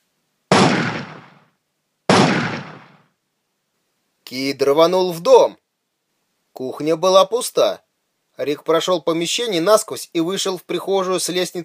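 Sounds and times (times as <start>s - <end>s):
gunshots from a gauss assault rifle fired inside a house: 0.5s - 1.5s, 2.1s - 3.0s
speech: 4.3s - 5.6s, 6.6s - 7.8s, 8.4s - 11.6s.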